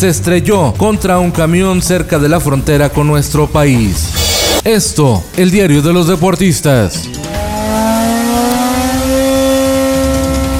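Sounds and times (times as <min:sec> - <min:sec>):
speech: 0:00.0 - 0:07.4
new Mercedes Formula 1 race car engine for the 2021 season revving: 0:07.1 - 0:10.5.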